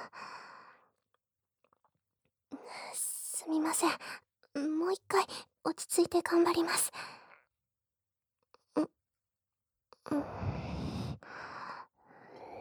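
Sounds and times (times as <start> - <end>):
speech: 3.7 - 4.2, 5.8 - 7.1
deep breathing to calm down: 10.1 - 12.5.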